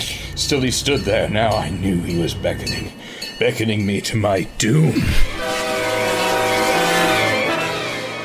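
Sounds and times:
low rail rumble: 0.0s - 8.2s
train bell tolling: 0.0s - 8.2s
speech: 0.4s - 5.5s
approaching train whistle: 5.2s - 8.2s.

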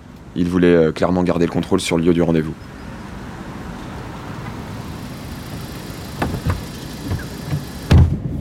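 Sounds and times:
moving car engine and road rumble inside the cabin: 0.0s - 8.3s
speech: 0.4s - 2.8s
dull knocks and bumps in a moving car: 6.2s - 8.3s
loud thud in a moving car: 6.2s - 8.3s.

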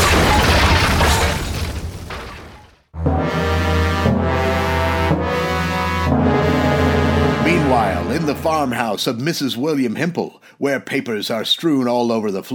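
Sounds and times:
burning roof of a blazing barracks crashing down: 0.0s - 2.7s
bold sustained orchestral music chords: 3.0s - 8.9s
speech: 8.2s - 12.5s.

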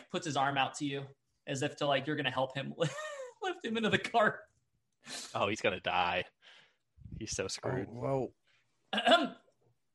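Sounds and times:
speech: 0.1s - 6.4s, 7.0s - 9.4s
single short raspy cough: 9.0s - 9.4s.

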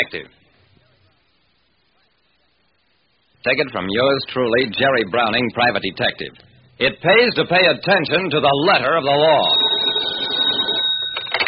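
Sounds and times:
speech: 0.0s - 0.4s, 3.4s - 9.7s
old-fashioned telephone bell ringing: 9.1s - 11.4s.

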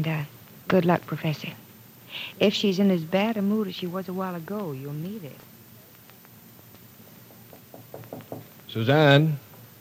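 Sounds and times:
speech: 0.0s - 5.5s, 8.7s - 9.4s
knocking on a door: 7.3s - 8.5s.

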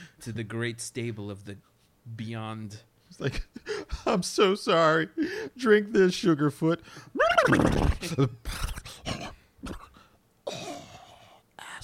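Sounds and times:
speech: 0.2s - 8.7s
person vocally imitating a horse whinny: 7.2s - 8.0s.

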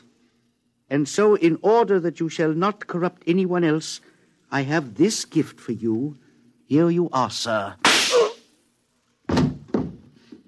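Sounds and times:
speech: 0.9s - 7.9s
gunshots in a radio drama: 7.8s - 8.4s.

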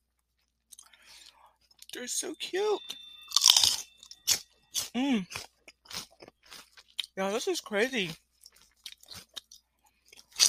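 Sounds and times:
speech: 2.0s - 3.0s, 5.0s - 5.5s, 7.2s - 8.2s
crunchy chewing of sugar snap peas soaked for about an hour: 3.3s - 7.2s, 8.0s - 10.4s.

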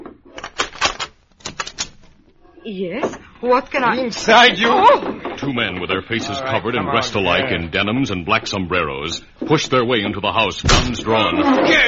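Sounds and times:
house door lock and latch clicking and rattling: 0.3s - 2.2s
speech: 2.6s - 11.8s.

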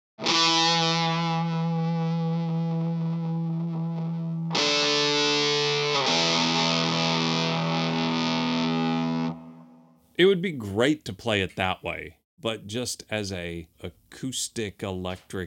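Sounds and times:
electric guitar played through fuzz pedal: 0.2s - 10.0s
speech: 10.2s - 15.4s.

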